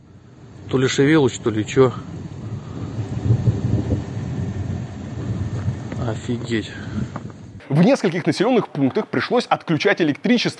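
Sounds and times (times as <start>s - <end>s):
speech: 0.7s - 2.2s, 6.1s - 7.1s, 7.7s - 10.5s
low rolling thunder: 2.2s - 5.9s
laughter: 7.6s - 9.7s.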